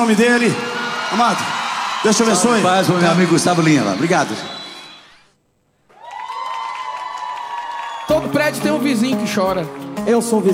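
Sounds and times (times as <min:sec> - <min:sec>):
speech: 0:00.0 - 0:04.6, 0:08.4 - 0:10.5
audience applause: 0:00.0 - 0:05.2, 0:05.9 - 0:10.0
cheering voices: 0:00.0 - 0:05.2, 0:05.9 - 0:08.8
whistles: 0:03.5 - 0:05.4, 0:07.7 - 0:08.3.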